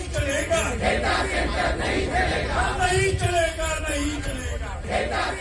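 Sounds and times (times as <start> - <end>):
protest crowd chanting against data centres in India: 0.2 - 3.2, 4.2 - 5.3.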